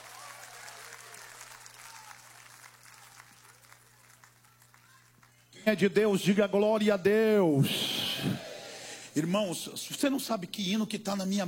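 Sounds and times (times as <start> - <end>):
church audience applauding: 0.0 - 5.5
faint low electrical hum: 0.0 - 11.4
speech: 5.7 - 8.4, 9.2 - 11.4.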